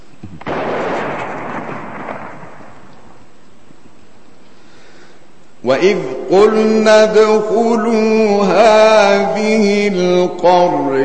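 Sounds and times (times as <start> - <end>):
cannon firing: 0.4 - 4.4
speech: 5.7 - 11.0.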